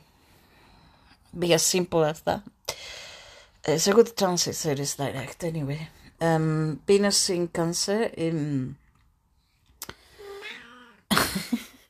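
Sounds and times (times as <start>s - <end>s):
speech: 1.3s - 2.6s, 3.7s - 8.8s
cat giving a drawn-out wavering meow: 10.2s - 11.1s.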